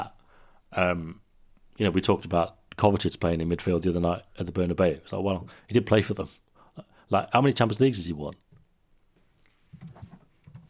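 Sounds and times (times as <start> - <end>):
speech: 0.0 - 1.2, 1.8 - 8.4
computer keyboard typing for a web search: 9.8 - 10.6.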